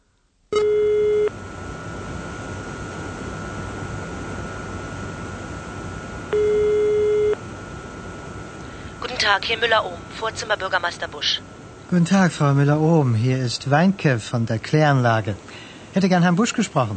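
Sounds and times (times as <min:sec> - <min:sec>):
hiss of telephone line noise: 0:00.0 - 0:16.9
telephone ringing tone: 0:00.5 - 0:01.4, 0:06.3 - 0:07.4
speech: 0:09.3 - 0:16.9.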